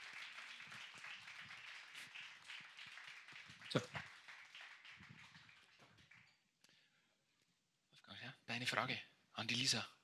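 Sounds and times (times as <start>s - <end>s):
audience applause: 0.0s - 6.3s
speech: 3.7s - 4.0s, 8.6s - 10.0s.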